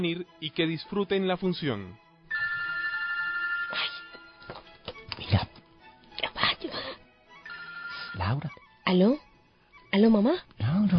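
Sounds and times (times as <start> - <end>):
speech: 0.0 - 2.0, 3.7 - 4.0, 8.2 - 9.2, 9.9 - 10.9
cell phone ringtone playing an electronic melody in a theater: 2.3 - 4.6, 7.4 - 8.6.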